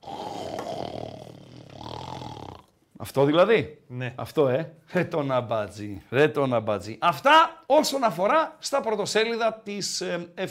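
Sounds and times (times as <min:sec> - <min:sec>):
lion roaring: 0:00.0 - 0:02.6
speech: 0:03.0 - 0:10.4.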